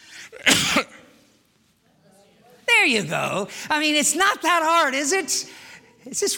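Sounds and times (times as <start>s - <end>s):
speech: 0.3s - 0.9s, 2.8s - 6.3s
person sneezing: 0.3s - 1.2s.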